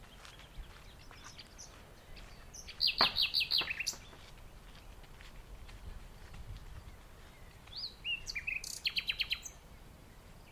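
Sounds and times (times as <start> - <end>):
common nightingale song in the dunes of The Hague: 0.0 - 10.5.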